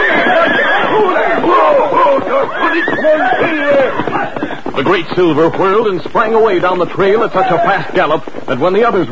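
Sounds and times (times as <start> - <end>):
horse snorting and whinnying as it rears: 0.0 - 4.7
speech: 4.9 - 9.1.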